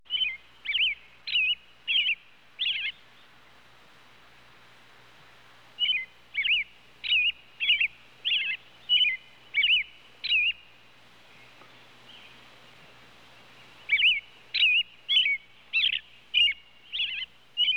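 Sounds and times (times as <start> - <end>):
robin calls: 0.1 - 3.4, 5.8 - 17.7.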